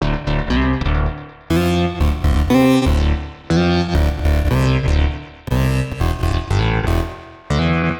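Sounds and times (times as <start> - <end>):
Prophet analogue synth bass loop: 0.0 - 7.9.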